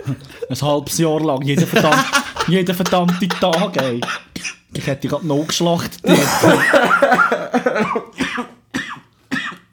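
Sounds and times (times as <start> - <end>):
speech: 0.0 - 8.5
laughter: 1.6 - 4.1, 6.1 - 8.2
person coughing from an irritating cough: 2.9 - 9.7.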